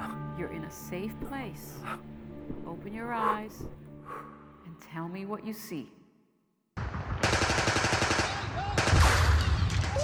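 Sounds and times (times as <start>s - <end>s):
speech: 0.4s - 6.0s
rapid automatic gunfire in a military firefight: 6.8s - 10.0s.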